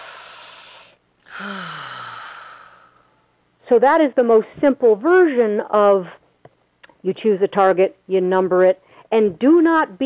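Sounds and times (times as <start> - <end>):
deep breath with long soft sighing exhale: 0.0 - 3.3
steady hiss: 0.0 - 10.0
speech: 1.4 - 1.7, 3.7 - 6.2, 7.0 - 10.0.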